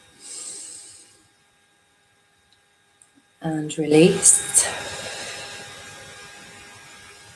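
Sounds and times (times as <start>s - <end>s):
deep hissing inhale through the nose during a breathing exercise: 0.0s - 1.3s, 4.6s - 6.4s
speech: 3.4s - 5.0s.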